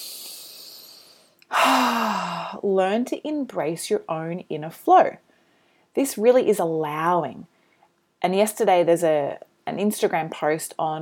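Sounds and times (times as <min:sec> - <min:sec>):
long deep breath: 0:00.0 - 0:02.6, 0:05.3 - 0:05.9
faint steady hiss: 0:00.0 - 0:10.9
speech: 0:02.6 - 0:05.3, 0:06.0 - 0:07.5, 0:08.2 - 0:10.9.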